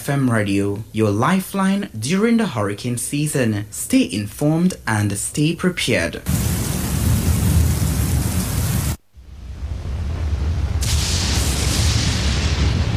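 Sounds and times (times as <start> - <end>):
speech: 0.0 - 6.6
deep rumbling thunder: 6.3 - 12.9
steady heavy rain of a thunderstorm: 6.3 - 12.9.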